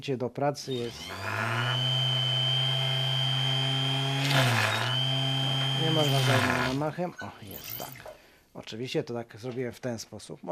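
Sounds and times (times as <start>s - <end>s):
speech: 0.0s - 1.6s, 4.3s - 4.8s, 5.8s - 10.5s
power drill drilling a hole to make a bead: 0.6s - 8.2s.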